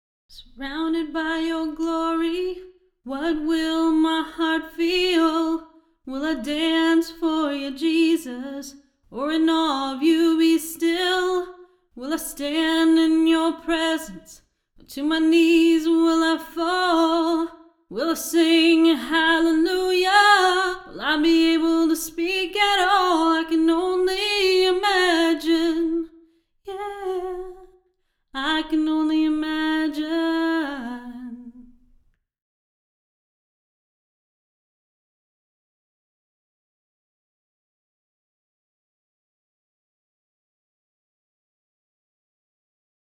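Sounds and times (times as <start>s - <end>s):
voice in a small room: 0.3s - 26.0s, 26.7s - 27.6s, 28.4s - 31.6s.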